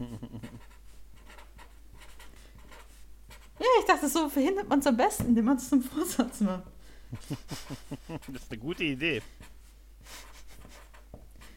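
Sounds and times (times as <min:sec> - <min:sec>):
laughter: 0:00.0 - 0:00.6, 0:07.1 - 0:09.2
faint steady hum: 0:00.0 - 0:11.5
pen writing on paper: 0:00.4 - 0:03.6, 0:09.1 - 0:11.5
speech: 0:03.9 - 0:09.5.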